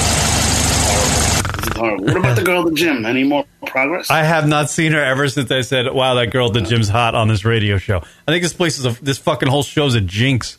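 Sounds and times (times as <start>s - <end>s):
voice imitating a rumbling clothes dryer: 0.7s - 3.6s
speech: 1.8s - 10.5s.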